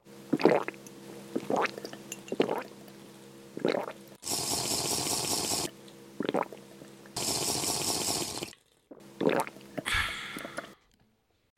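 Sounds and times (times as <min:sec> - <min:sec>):
person gulping while drinking water: 0:00.3 - 0:02.9, 0:03.6 - 0:10.8
breathy rush of air: 0:09.9 - 0:10.8.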